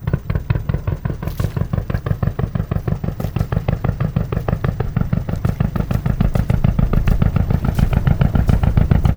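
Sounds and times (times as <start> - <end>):
fishing boat: 0.0 - 9.1.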